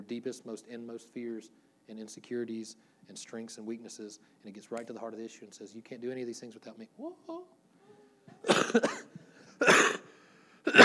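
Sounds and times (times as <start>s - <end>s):
speech: 0.1s - 7.6s, 8.4s - 9.7s
person coughing: 8.3s - 10.8s.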